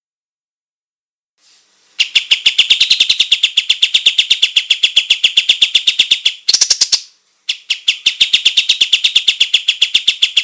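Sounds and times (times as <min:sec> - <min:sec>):
olive-winged bulbul giving rapid high crisp chirps: 0:02.0 - 0:10.4.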